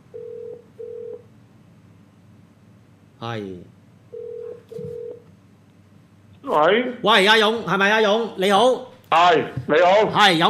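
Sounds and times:
telephone ringback tone beeps as a call line connects: 0.1s - 1.2s, 4.2s - 5.2s
speech: 3.2s - 3.8s, 6.5s - 10.4s.

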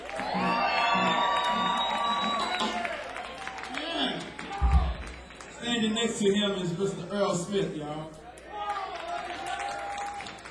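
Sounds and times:
large crowd screaming and cheering: 0.0s - 5.6s, 8.4s - 10.4s
speech: 6.2s - 8.2s.

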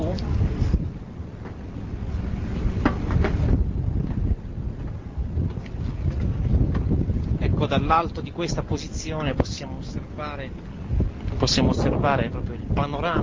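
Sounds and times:
faint engine rumble: 0.0s - 13.2s
faint water: 0.0s - 13.2s
strong wind buffeting the microphone on a ferry deck: 0.0s - 13.2s
speech: 7.7s - 13.2s.

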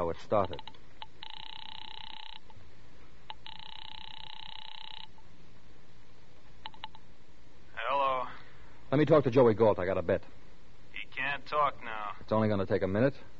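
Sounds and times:
speech: 0.1s - 0.8s, 8.9s - 10.4s, 11.4s - 13.3s
telephone ringback tone over the line: 0.5s - 2.5s, 3.3s - 5.2s.

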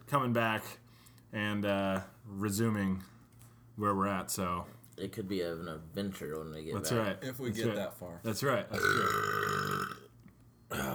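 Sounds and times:
speech: 0.1s - 3.1s, 3.8s - 9.5s
loud rough drawn-out burp: 8.8s - 10.1s, 10.7s - 10.9s.

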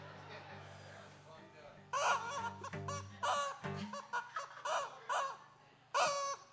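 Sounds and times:
laughter: 0.0s - 6.4s
turkey call: 1.9s - 6.5s
chickens clucking: 2.0s - 6.4s.

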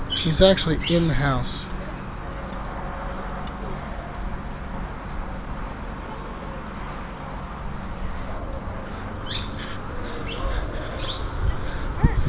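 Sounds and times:
bird calling and chirping inside a house: 0.0s - 1.7s, 8.9s - 12.2s
steady outdoor hiss of rumbling noise: 0.0s - 12.2s
speech: 0.2s - 1.6s.

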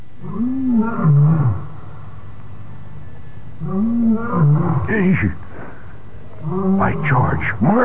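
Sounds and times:
steady hiss: 0.0s - 7.8s
lion roaring at a water hole in Central Africa: 0.2s - 1.8s, 3.6s - 7.8s
speech: 4.4s - 5.4s, 6.8s - 7.8s.

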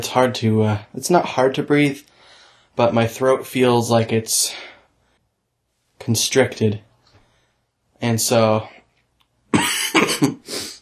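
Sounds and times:
speech: 0.0s - 2.1s, 2.8s - 4.7s, 6.0s - 6.9s, 8.0s - 8.8s
person coughing from allergies after mowing a lawn and running: 9.5s - 10.8s.

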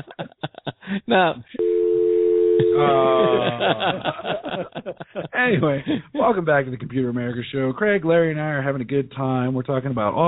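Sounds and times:
laughter: 0.0s - 1.6s, 2.6s - 6.4s
speech: 1.0s - 1.6s, 2.7s - 10.2s
telephone hang-up tone: 1.6s - 3.0s.

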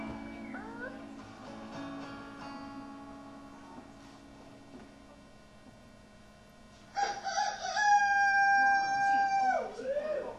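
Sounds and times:
person imitating a rooster crowing: 7.0s - 10.3s.

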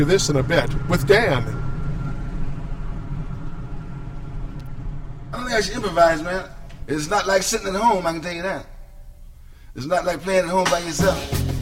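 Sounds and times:
speech: 0.0s - 1.6s, 5.5s - 8.7s, 9.8s - 11.4s
rumble of tires and engine inside a moving car: 0.0s - 7.8s.

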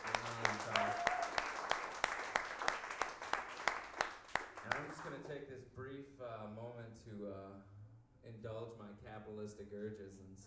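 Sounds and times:
crowd applauding: 0.0s - 5.3s
speech: 5.1s - 10.4s.

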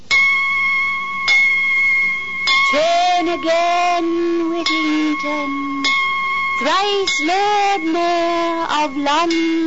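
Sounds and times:
church bells ringing in London: 0.1s - 9.6s
speech: 3.3s - 5.9s, 6.6s - 9.6s.

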